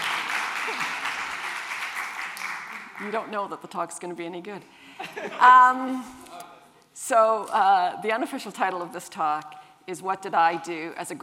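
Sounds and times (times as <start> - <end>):
lecture audience applause: 0.0 - 3.1
speech: 3.0 - 6.3, 7.0 - 11.2.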